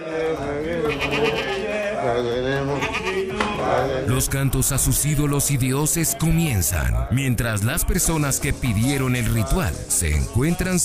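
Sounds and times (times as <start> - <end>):
human voices during a sorcerer's ritual: 0.0 - 10.8
goat bleating during a sorcerer's ritual: 0.8 - 1.8, 2.6 - 3.5
speech: 3.7 - 10.8.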